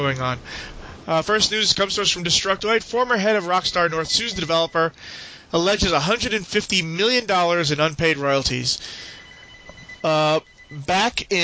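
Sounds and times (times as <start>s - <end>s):
speech: 0.0s - 9.2s, 10.0s - 11.4s
faint hum: 0.0s - 11.4s
telephone ringing in short melodic bursts: 3.8s - 5.0s, 8.8s - 11.4s.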